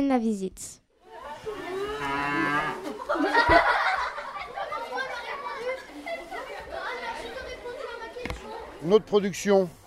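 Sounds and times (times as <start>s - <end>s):
speech: 0.0s - 0.8s, 3.2s - 3.8s, 8.8s - 9.8s
murmur of other animals: 1.0s - 3.2s
dairy cows mooing in a barn: 1.3s - 3.0s
laughter: 2.7s - 7.6s.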